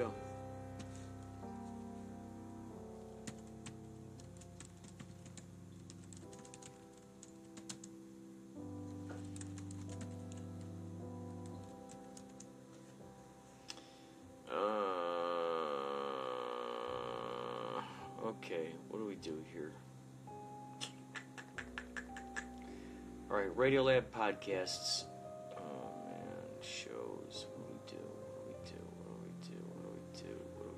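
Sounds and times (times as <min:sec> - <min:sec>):
speech: 0:00.0 - 0:00.3, 0:18.5 - 0:19.8, 0:23.3 - 0:25.1
quiet sustained music: 0:00.0 - 0:30.7
typing text on a computer keyboard: 0:03.2 - 0:07.9, 0:09.1 - 0:10.7, 0:11.4 - 0:12.5.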